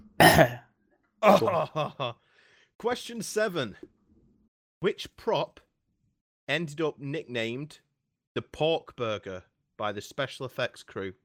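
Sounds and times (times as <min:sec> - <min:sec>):
throat clearing: 0:00.1 - 0:00.6
speech: 0:00.4 - 0:00.6, 0:01.2 - 0:04.0, 0:04.8 - 0:05.6, 0:06.5 - 0:07.8, 0:08.4 - 0:11.2.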